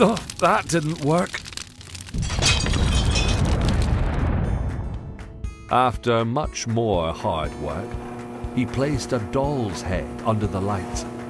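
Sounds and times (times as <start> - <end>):
speech: 0.0 - 1.4, 5.7 - 11.1
dense crackling roar of overheated machines exploding: 0.0 - 5.0
explosion of overheated machines: 2.1 - 5.6.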